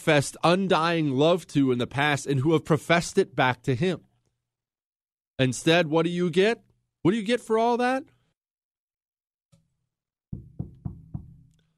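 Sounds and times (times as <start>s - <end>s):
speech: 0.0s - 4.1s, 5.4s - 8.2s
heavy booming knocking on a door: 10.3s - 11.5s.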